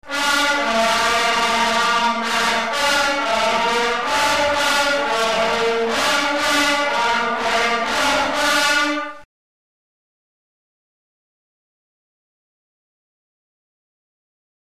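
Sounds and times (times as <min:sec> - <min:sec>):
harsh mutant fanfare: 0:00.0 - 0:09.3.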